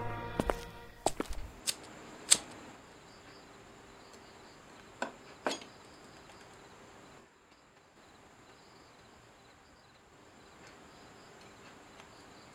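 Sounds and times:
sharp footsteps on a hard surface behind people walking: 0:00.0 - 0:01.6
quiet hiss: 0:00.0 - 0:12.5
faint insect whine: 0:00.4 - 0:12.5.

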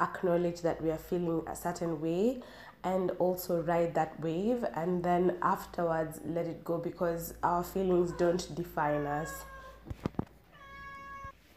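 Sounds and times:
speech: 0:00.0 - 0:10.1
cat giving a drawn-out steady meow: 0:08.1 - 0:09.9, 0:10.5 - 0:11.4.

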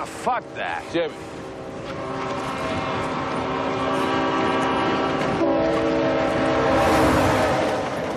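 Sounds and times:
speech: 0:00.0 - 0:02.4
train wheels rumbling past: 0:00.0 - 0:08.1.

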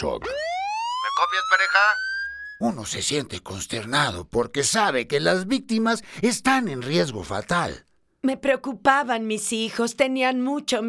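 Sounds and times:
speech: 0:00.0 - 0:00.6, 0:01.2 - 0:10.8
police siren wailing: 0:00.0 - 0:02.6.

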